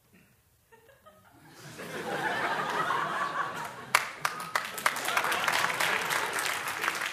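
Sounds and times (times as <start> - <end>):
laughter: 0.8 - 7.1
audience applause: 2.1 - 7.1
sharp loud claps: 3.9 - 7.1.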